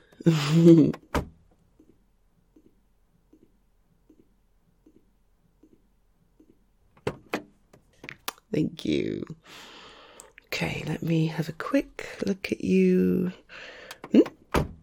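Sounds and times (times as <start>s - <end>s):
speech: 0.2s - 1.0s, 8.6s - 9.8s, 10.5s - 14.7s
sharp door clunk: 14.0s - 14.8s.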